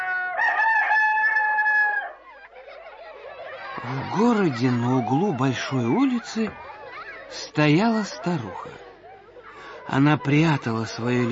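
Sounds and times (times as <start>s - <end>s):
rooster crowing: 0.0s - 2.4s
laughter: 2.2s - 11.3s
speech: 3.8s - 6.7s, 7.3s - 8.8s, 9.9s - 11.3s.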